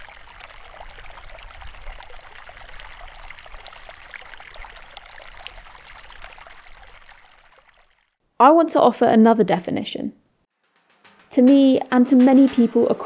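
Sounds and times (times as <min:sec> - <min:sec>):
river water flowing: 0:00.0 - 0:08.2
speech: 0:08.4 - 0:10.2, 0:11.4 - 0:13.0.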